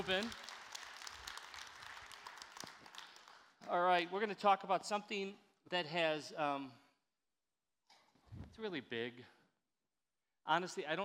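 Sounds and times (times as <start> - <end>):
speech: 0.0 - 0.4, 3.7 - 6.8, 8.6 - 9.4, 10.4 - 11.0
crowd applauding: 0.0 - 3.8.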